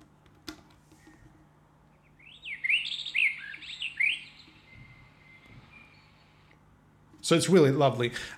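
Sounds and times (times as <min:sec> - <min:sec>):
faint steady hum: 0:00.0 - 0:08.3
birdsong alarm from wake-up light: 0:01.9 - 0:06.7
speech: 0:07.3 - 0:08.3.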